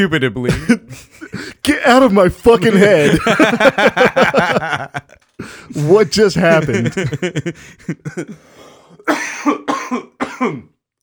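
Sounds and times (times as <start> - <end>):
speech: 0.0 - 10.7
person coughing after laughing too hard: 0.5 - 1.6, 9.0 - 10.8
laughter: 0.5 - 8.4.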